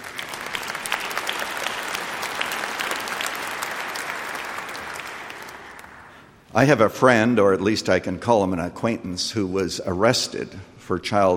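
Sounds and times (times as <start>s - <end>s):
audience applauding: 0.0s - 6.4s
speech: 6.6s - 11.3s.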